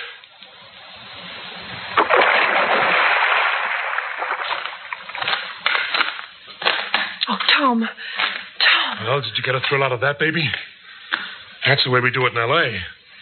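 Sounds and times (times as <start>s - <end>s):
water dripping: 0.0s - 9.8s
woman's body thrown into a river splashing: 2.0s - 6.9s
speech: 7.6s - 8.2s, 8.9s - 10.7s, 11.6s - 13.0s.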